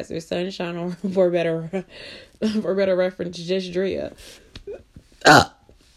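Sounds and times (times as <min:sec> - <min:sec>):
speech: 0:00.0 - 0:05.5
loud burp: 0:05.2 - 0:05.7.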